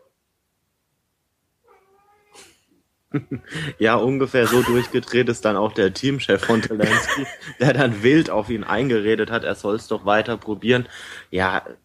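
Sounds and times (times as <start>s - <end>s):
tomcat yowling and caterwauling: 1.6s - 2.6s
laughter: 3.1s - 5.3s, 6.4s - 8.3s
speech: 3.1s - 11.8s.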